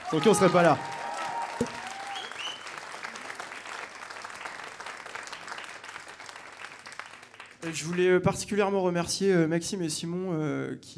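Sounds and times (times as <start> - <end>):
audience whistles and cheers: 0.0 - 2.8
live audience applause after a concert: 0.0 - 8.0
speech: 0.1 - 0.9, 1.6 - 1.8, 7.7 - 10.9.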